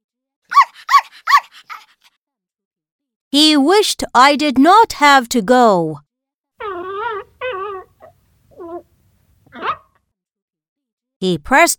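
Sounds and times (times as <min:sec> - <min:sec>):
dog barking: 0:00.5 - 0:01.9, 0:09.5 - 0:10.0
dog yipping softly: 0:00.5 - 0:02.0, 0:06.6 - 0:08.9, 0:09.5 - 0:09.9
speech: 0:03.4 - 0:06.0, 0:11.2 - 0:11.7.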